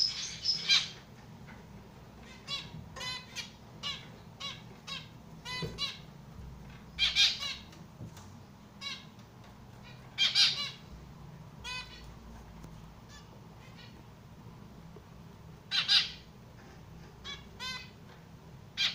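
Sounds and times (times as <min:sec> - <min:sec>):
estrildid finch calls: 0:00.0 - 0:01.1, 0:02.2 - 0:06.1, 0:06.7 - 0:07.8, 0:08.8 - 0:10.9, 0:11.6 - 0:12.1, 0:15.7 - 0:16.3, 0:17.1 - 0:18.1, 0:18.7 - 0:18.9
faint background hum: 0:00.0 - 0:18.9.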